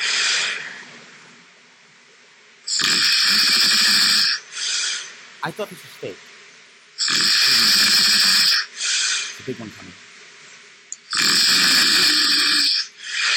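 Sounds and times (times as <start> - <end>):
pet snoring loudly: 2.7 - 5.1, 7.0 - 9.4, 11.1 - 13.3
speech: 5.4 - 6.3, 9.5 - 10.1.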